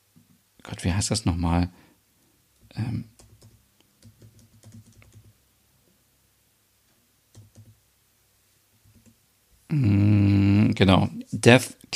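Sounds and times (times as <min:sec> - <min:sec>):
speech: 0:00.6 - 0:01.9, 0:02.8 - 0:03.1, 0:10.8 - 0:11.9
typing on a computer keyboard: 0:03.1 - 0:05.4, 0:07.3 - 0:07.8.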